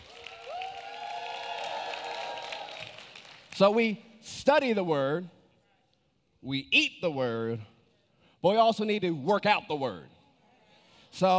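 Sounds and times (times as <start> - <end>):
crowd applauding and cheering: 0.0 - 3.8
drawn-out whooping or whistling cheer: 0.1 - 3.0
speech: 3.6 - 5.4, 6.4 - 7.7, 8.4 - 10.1, 11.1 - 11.3.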